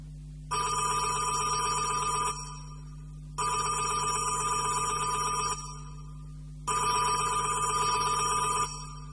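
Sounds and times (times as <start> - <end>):
telephone ringing at a monastery in Old Cairo: 0.5 - 2.8, 3.4 - 5.9, 6.7 - 9.1.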